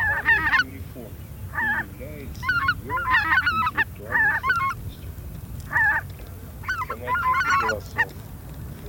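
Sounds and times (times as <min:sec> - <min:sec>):
Greater white-fronted goose honking: 0:00.0 - 0:00.8, 0:01.5 - 0:04.8, 0:05.7 - 0:06.0, 0:06.6 - 0:08.1.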